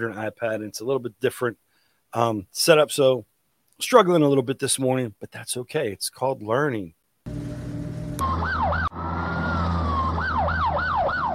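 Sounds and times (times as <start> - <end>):
speech: 0.0 - 7.4
low engine rumble: 7.3 - 11.0
siren wailing: 7.4 - 11.3.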